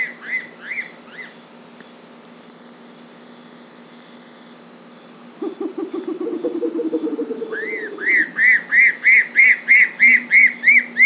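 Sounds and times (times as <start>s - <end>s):
insects buzzing: 0.0s - 11.0s
bare-legged owl low fast stuttering trill: 5.4s - 9.2s
bare-legged owl loud arched whistled notes: 5.4s - 11.0s.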